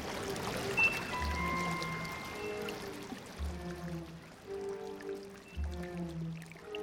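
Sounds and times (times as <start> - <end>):
water flowing through an echoing hand-built brick sewer tunnel: 0.0 - 6.8.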